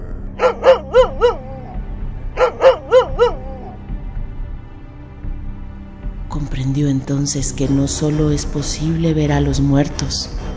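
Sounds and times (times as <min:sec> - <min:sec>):
dog barking in sharp yaps: 0:00.4 - 0:01.8, 0:02.4 - 0:03.7
speech: 0:07.1 - 0:10.4.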